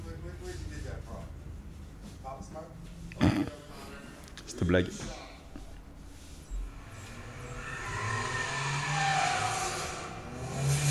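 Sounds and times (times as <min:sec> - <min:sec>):
speech: 0:04.6 - 0:05.2
drifting car engine roaring: 0:06.6 - 0:10.9
car tyres skidding and squealing while drifting: 0:06.9 - 0:10.3.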